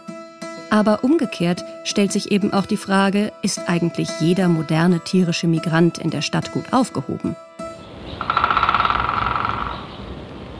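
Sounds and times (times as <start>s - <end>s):
speech: 0.7s - 7.5s
woodpecker drumming on a tree in a forest: 7.9s - 10.2s.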